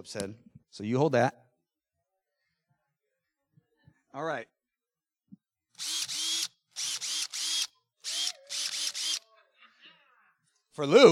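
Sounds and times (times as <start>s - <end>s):
speech: 0.0s - 1.4s, 4.2s - 4.6s, 10.8s - 11.1s
power drill whirring in short bursts: 5.8s - 9.3s.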